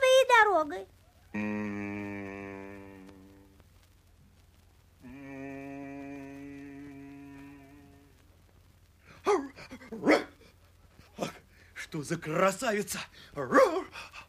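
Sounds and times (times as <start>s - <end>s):
speech: 0.6s - 2.0s, 12.0s - 14.1s
dog giving sharp loud barks: 9.3s - 10.4s.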